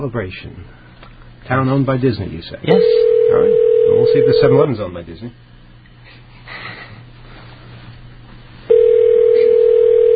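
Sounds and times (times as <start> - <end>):
speech: 0.0 - 0.8, 1.4 - 5.5
telephone ringing with no answer: 2.8 - 4.6, 8.7 - 10.1.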